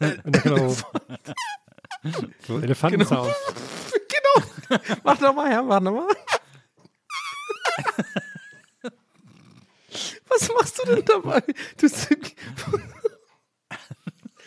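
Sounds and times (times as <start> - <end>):
speech: 0.0 - 1.4, 2.0 - 3.8, 4.4 - 6.3
laughter: 0.0 - 3.5, 4.2 - 6.2, 7.6 - 9.0, 10.3 - 14.4
mouth sucking on upper arm skin imitating elephant trumpet: 7.1 - 7.8.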